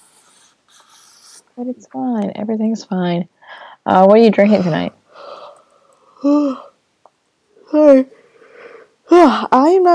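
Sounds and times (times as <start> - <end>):
speech: 1.6 - 5.0, 6.2 - 6.7, 7.7 - 8.2, 9.1 - 9.9
person giving a drawn-out voiced yawn: 6.2 - 6.7.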